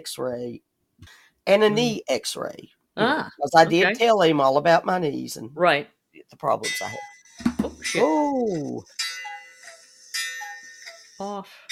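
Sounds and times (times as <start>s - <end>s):
speech: 0.0s - 7.1s, 7.8s - 9.1s, 11.2s - 11.6s
cuckoo clock chiming: 6.6s - 11.6s
short humming vocal sound: 7.6s - 8.8s.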